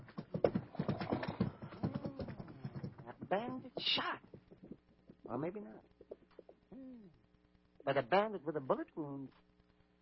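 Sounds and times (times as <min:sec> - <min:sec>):
hooves clip-clopping: 0:00.0 - 0:06.6
speech: 0:03.3 - 0:04.2, 0:05.3 - 0:05.9, 0:07.8 - 0:09.5.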